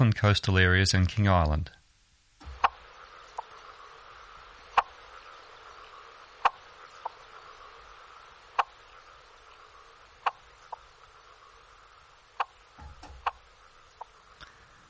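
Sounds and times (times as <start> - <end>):
speech: 0.0 - 1.8
faint steady background hum: 0.0 - 14.8
frog clicking calls: 2.5 - 3.6, 4.6 - 14.2.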